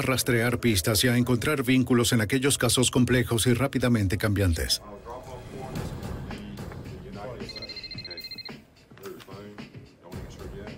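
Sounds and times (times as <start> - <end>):
speech: 0.0 - 5.3
telephone ringing with an electronic trill: 7.4 - 8.6.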